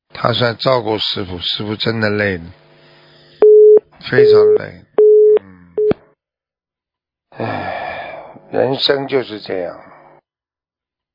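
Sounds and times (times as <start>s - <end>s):
speech: 0.2s - 2.6s, 4.0s - 4.8s, 7.4s - 7.8s, 8.5s - 9.9s
telephone busy tone after a call is hung up: 3.4s - 6.0s.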